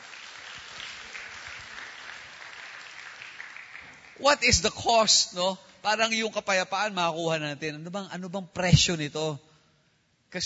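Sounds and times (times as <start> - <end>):
church congregation applauding: 0.0 - 4.8
speech: 4.2 - 9.5.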